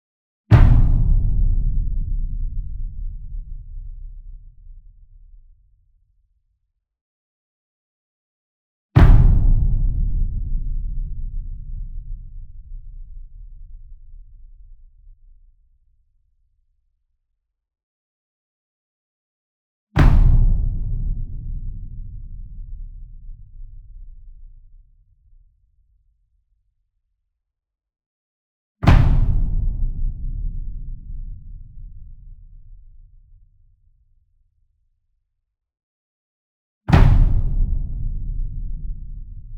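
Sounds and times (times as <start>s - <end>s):
single 66 inch drum flam with soft beater: 0.5s - 4.7s, 9.0s - 13.0s, 20.0s - 23.6s, 28.8s - 32.6s, 36.9s - 39.5s.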